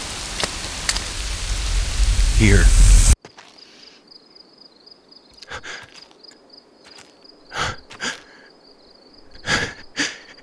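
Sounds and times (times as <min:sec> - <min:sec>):
low rumble: 0:00.0 - 0:03.2
sharper drips or splashes: 0:00.0 - 0:03.2
steady rain falling: 0:00.0 - 0:03.2
speech: 0:02.4 - 0:02.9.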